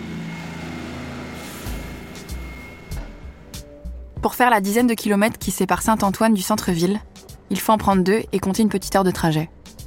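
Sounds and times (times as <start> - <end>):
heavy bus engine rumbling on a street: 0.0 - 7.0
bus air brakes hissing: 1.0 - 4.0
speech: 4.2 - 9.6.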